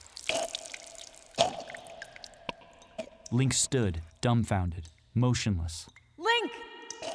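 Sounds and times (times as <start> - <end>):
faint trickle of liquid: 0.0 - 5.2
speech: 3.3 - 6.6.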